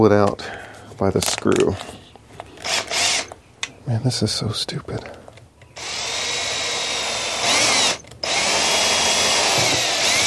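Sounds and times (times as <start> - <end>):
speech: 0.0 - 2.0, 3.9 - 5.2
power drill boring into plastic: 2.6 - 3.4, 5.8 - 10.2.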